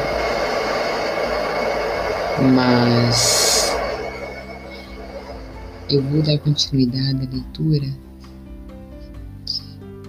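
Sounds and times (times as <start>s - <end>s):
blender running: 0.0s - 6.3s
speech: 2.4s - 3.6s, 5.9s - 8.1s.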